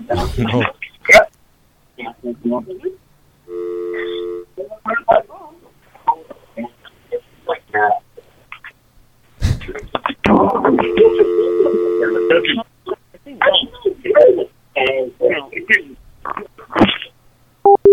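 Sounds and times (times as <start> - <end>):
person talking: 0.0 - 1.3, 2.0 - 3.0, 3.9 - 8.7, 9.4 - 17.1
steady electronic telephone dial tone: 3.5 - 4.5, 10.9 - 12.4.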